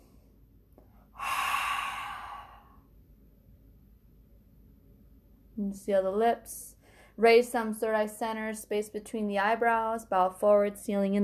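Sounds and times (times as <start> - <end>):
deep breathing during a yoga breathing exercise: 1.0 - 2.9
speech: 5.6 - 11.2.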